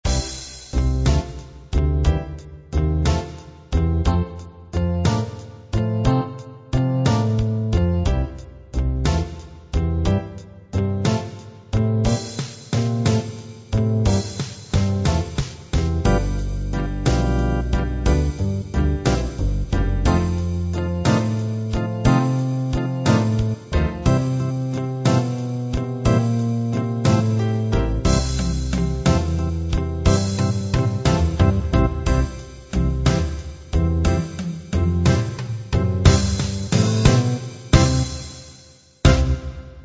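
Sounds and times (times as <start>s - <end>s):
slow blues music: 0.0s - 38.4s.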